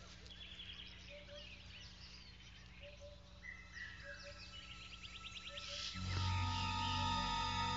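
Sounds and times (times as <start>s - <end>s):
birds chirping and whistling: 0.0s - 7.7s
vervet monkey eagle alarm call: 2.8s - 7.7s.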